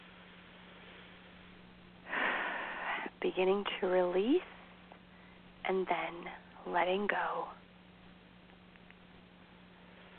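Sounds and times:
deep breath during a guided breathing exercise: 2.0s - 3.1s
speech: 3.2s - 4.6s, 5.6s - 7.6s.

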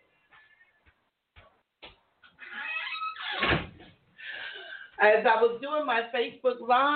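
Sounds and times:
door swinging shut with a loud solid thud: 3.2s - 3.9s
speech: 5.0s - 6.9s.

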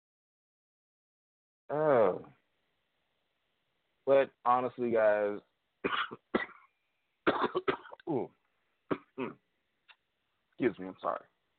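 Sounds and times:
speech: 4.1s - 6.5s, 7.3s - 8.4s, 9.2s - 9.4s, 10.6s - 11.3s
harsh dry coughing: 5.8s - 8.3s, 8.9s - 9.4s
voiced throat sounds: 7.8s - 9.5s.

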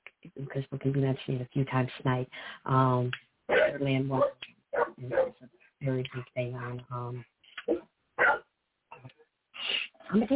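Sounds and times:
speech: 0.4s - 7.8s, 10.1s - 10.3s
dog barking: 3.5s - 5.4s, 8.2s - 8.4s.

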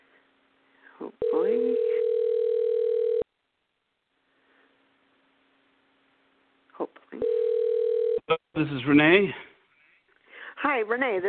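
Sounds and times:
speech: 1.0s - 1.9s, 8.6s - 9.4s, 10.7s - 11.2s
telephone dial tone: 1.2s - 3.2s, 7.2s - 8.2s.

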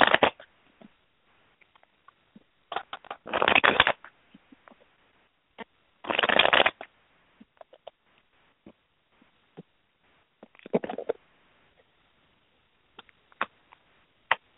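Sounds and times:
tarot cards being shuffled: 0.0s - 0.4s, 2.8s - 4.0s, 6.1s - 6.9s.

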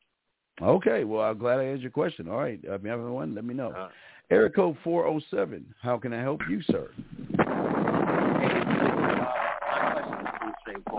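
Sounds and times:
speech: 0.6s - 7.4s, 10.7s - 10.9s
wind rushing through an open car window: 7.0s - 10.9s
voice: 8.3s - 10.9s.

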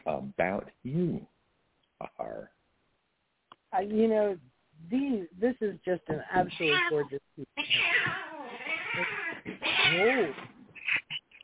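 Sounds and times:
speech: 0.4s - 1.3s, 2.0s - 2.6s, 3.7s - 8.3s, 9.0s - 10.5s
fighting cats yowling and caterwauling: 6.4s - 11.2s
cats hissing and spitting: 7.6s - 11.2s.

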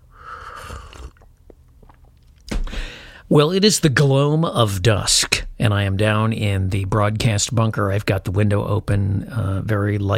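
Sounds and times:
gulp: 0.1s - 2.8s
slurping sip of hot coffee: 0.2s - 2.2s
mouth clicks: 0.2s - 2.7s
speech: 3.3s - 10.1s.

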